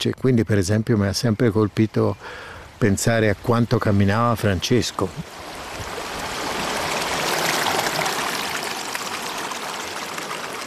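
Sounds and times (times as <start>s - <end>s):
speech: 0.0s - 5.6s
young river near its source rushing over rocks: 4.9s - 10.6s.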